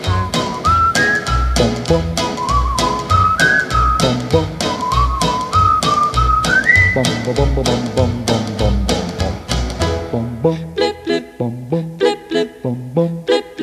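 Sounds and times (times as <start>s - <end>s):
backing track with a thumping beat and rhythmic percussion: 0.0s - 10.4s
whistled melody: 0.0s - 13.6s
speech: 1.6s - 2.2s, 4.3s - 4.6s, 7.0s - 8.8s, 10.4s - 10.6s, 11.4s - 11.9s, 12.6s - 13.3s.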